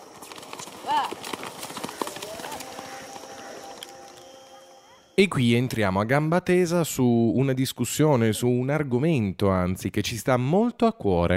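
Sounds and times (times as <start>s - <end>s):
horses galloping: 0.0s - 4.3s
horse whinny: 0.8s - 5.0s
speech: 5.2s - 11.3s.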